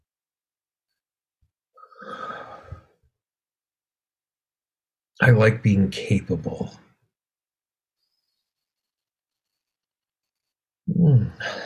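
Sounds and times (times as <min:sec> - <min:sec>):
big deep breath drawn in during a guided tapping exercise: 0:01.8 - 0:03.0
speech: 0:05.2 - 0:06.8, 0:11.0 - 0:11.6.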